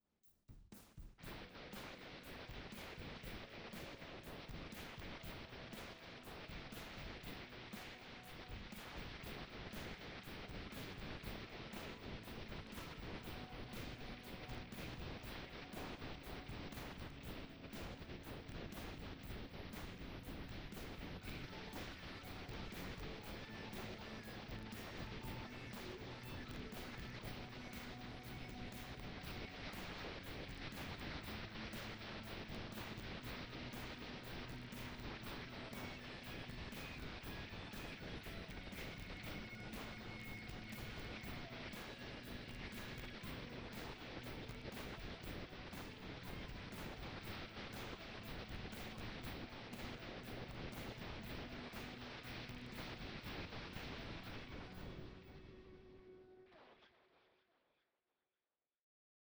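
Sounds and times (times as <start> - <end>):
rock riff residual noise: 1.2 - 56.2.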